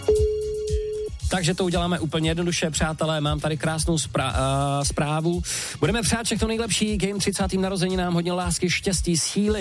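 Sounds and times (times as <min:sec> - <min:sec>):
telephone ringing tone during a call: 0:00.1 - 0:01.2
speech: 0:01.3 - 0:09.5.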